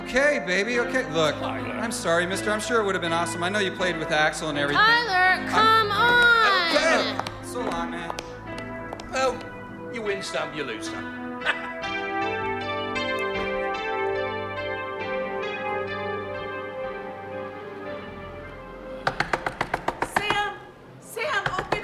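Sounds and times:
speech: 0.1 - 8.3, 9.1 - 11.7
sustained ringing bell-like tones: 11.4 - 17.5
sharp knocking on a door: 19.0 - 20.6, 21.4 - 21.8.

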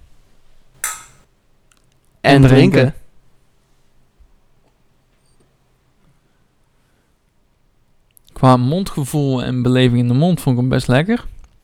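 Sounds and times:
glasses clinking together in a toast: 0.8 - 1.2
speech: 2.2 - 3.0, 8.4 - 11.4.

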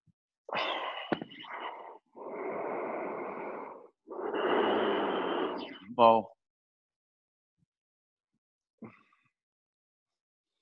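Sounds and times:
Ujjayi breathing during a guided yoga session: 0.5 - 5.9
speech: 6.0 - 6.3.

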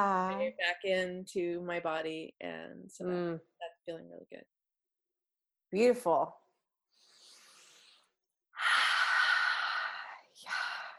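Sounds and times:
speech: 0.0 - 4.6, 5.7 - 6.4
very big deep breath: 6.9 - 10.9.

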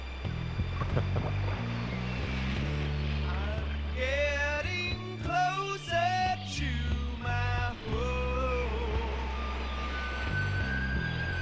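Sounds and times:
low continuous drone of a nearby boat engine: 0.0 - 11.4
water rushing and splashing: 0.0 - 11.4.

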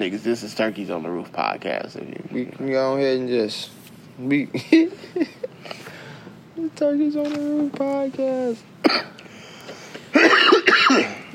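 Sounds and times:
speech: 0.0 - 6.0, 6.6 - 9.2
low steady hiss: 0.0 - 11.3
person coughing: 8.8 - 9.2, 10.1 - 11.3.

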